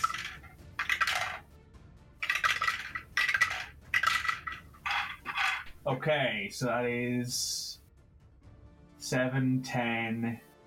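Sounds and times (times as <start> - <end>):
ten-sided dice rolling across a hard surface in a tabletop game: 0.0 - 1.4, 2.2 - 5.8
speech: 5.8 - 7.6, 9.1 - 10.5.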